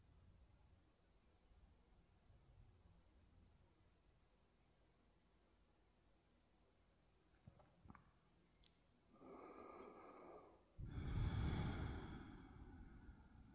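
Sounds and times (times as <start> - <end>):
slow deep breathing close to the mic: 9.2 - 13.5.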